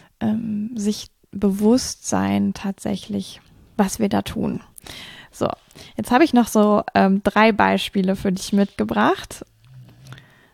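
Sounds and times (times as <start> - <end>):
speech: 0.8 - 9.5
dog snoring under desk chair: 9.3 - 10.5.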